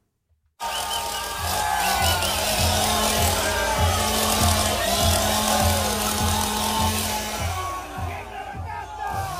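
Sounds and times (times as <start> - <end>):
noisy cheering crowd: 0.6 - 9.3
chainsaw revving on a pickup truck bed in Argentina: 0.7 - 8.1.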